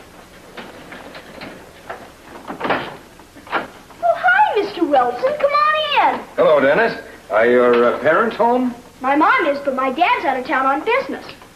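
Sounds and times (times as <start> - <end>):
door clunking open: 0.4 - 3.8
speech: 5.0 - 11.4.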